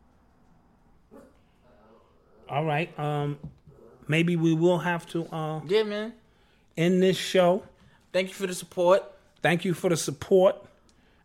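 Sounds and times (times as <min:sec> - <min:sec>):
running dog giving a short faint bark: 0:01.1 - 0:02.5
speech: 0:02.5 - 0:06.2, 0:06.8 - 0:10.7.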